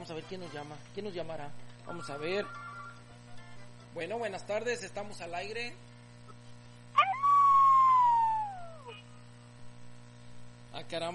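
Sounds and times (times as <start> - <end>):
low steady electrical hum: 0.0 - 11.1
speech: 0.1 - 2.7, 3.9 - 5.9, 10.8 - 11.1
coyote howling: 7.0 - 9.0.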